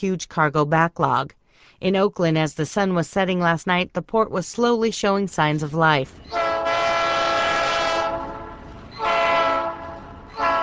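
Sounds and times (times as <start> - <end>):
speech: 0.0 - 6.4
freight train horn blasts: 6.3 - 10.6.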